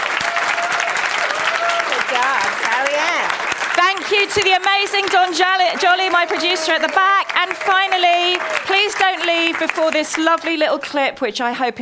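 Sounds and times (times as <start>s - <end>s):
voices calling out and cheering: 0.0s - 10.6s
audience clapping: 0.0s - 11.1s
speech: 4.0s - 11.8s.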